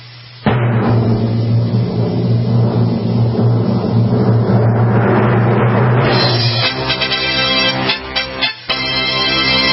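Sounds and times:
drum roll: 0:00.2 - 0:09.7
rapid crisp drum hits: 0:00.4 - 0:07.7.

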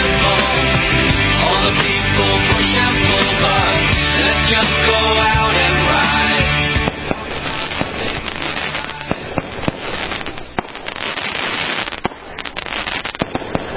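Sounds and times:
dense noisy rumble: 0:00.0 - 0:13.7
fireworks popping and crackling: 0:04.4 - 0:13.7
sharp fireworks bangs: 0:06.0 - 0:13.7.

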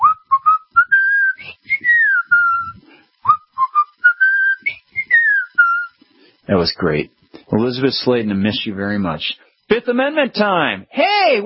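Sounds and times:
whistled melody: 0:00.0 - 0:05.9
speech: 0:06.5 - 0:11.4.

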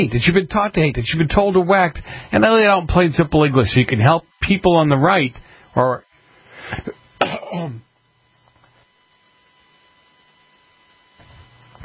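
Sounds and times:
speech: 0:00.0 - 0:06.1, 0:06.7 - 0:07.9
faint steady low mains hum: 0:00.0 - 0:11.8
man coughing: 0:06.6 - 0:07.9.

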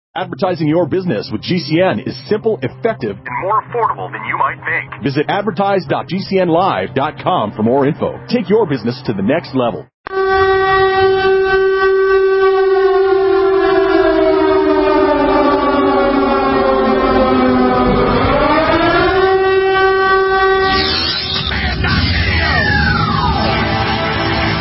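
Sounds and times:
speech: 0:00.2 - 0:11.2
outdoor emergency warning siren wailing: 0:10.1 - 0:24.5.

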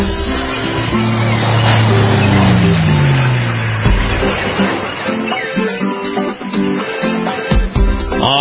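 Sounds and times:
roaring engine-like sweep dropping in pitch: 0:00.0 - 0:06.4
intro music for a beach and boating forecast: 0:00.0 - 0:08.3.

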